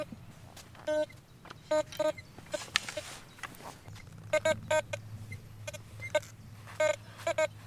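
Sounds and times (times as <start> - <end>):
low outdoor rumble: 0.0 - 7.6
metal detector beeping over a grenade fragment near the Peel boundary fault: 0.8 - 7.6.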